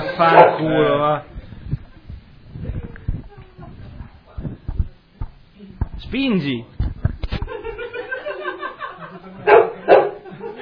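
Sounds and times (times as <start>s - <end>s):
laughter: 0.0s - 0.4s, 7.3s - 10.6s
low murmur: 0.0s - 10.6s
speech: 0.2s - 1.4s, 6.0s - 6.8s
dog barking: 0.3s - 0.6s, 9.5s - 10.2s.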